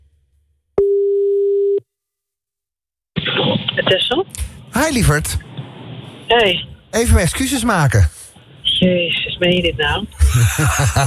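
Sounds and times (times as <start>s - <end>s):
telephone ringing tone: 0.8s - 1.8s
speech: 3.9s - 5.5s, 6.3s - 8.2s, 8.8s - 11.0s
laughter: 10.1s - 11.0s.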